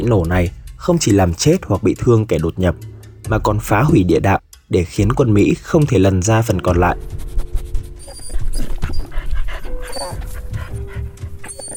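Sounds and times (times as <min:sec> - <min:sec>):
speech: 0:00.0 - 0:07.4
military detection dog panting: 0:06.9 - 0:11.7.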